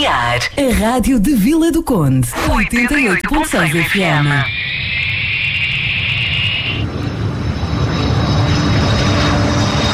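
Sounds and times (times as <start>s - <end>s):
speech: 0.1s - 4.8s
airplane taking off with engine roar: 2.3s - 9.9s
high-pitched airplane turbine whine: 2.3s - 9.9s.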